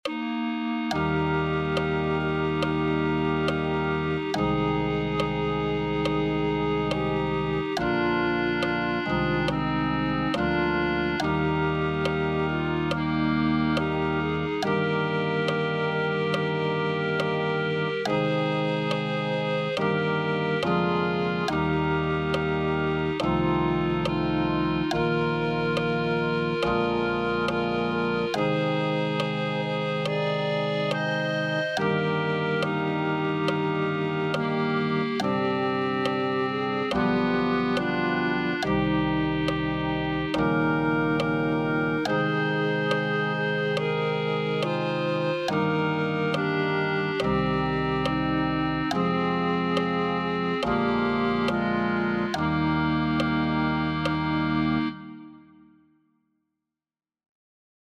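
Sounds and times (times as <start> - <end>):
clarinet: 0.0 - 55.8.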